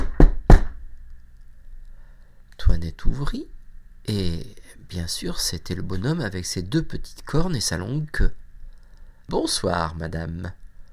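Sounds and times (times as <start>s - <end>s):
firm knocks on a door: 0.0s - 0.8s
speech: 2.7s - 8.4s, 9.3s - 10.6s.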